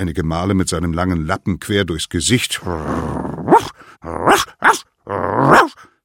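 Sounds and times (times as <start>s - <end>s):
speech: 0.0s - 5.9s
dog growling: 2.7s - 5.8s
dog yapping and barking: 3.5s - 5.8s.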